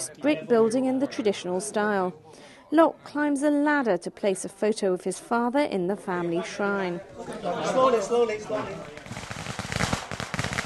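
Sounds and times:
speech: 0:00.0 - 0:09.3
long string of firecrackers crackling at family graves: 0:08.0 - 0:10.6.

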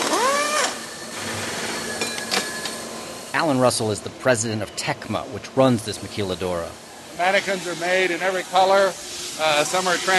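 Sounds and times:
power wrench opening a metal mold for plastic mannequins in a large factory: 0:00.0 - 0:02.7
speech: 0:03.4 - 0:10.1.

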